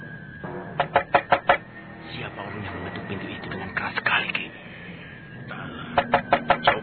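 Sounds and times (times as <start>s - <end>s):
loud knocking on a wooden hut door: 0.8s - 1.6s, 6.0s - 6.8s.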